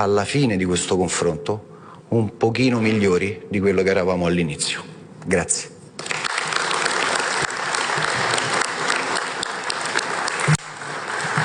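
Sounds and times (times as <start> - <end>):
speech: 0.0 - 5.7
audience applause: 6.0 - 11.4.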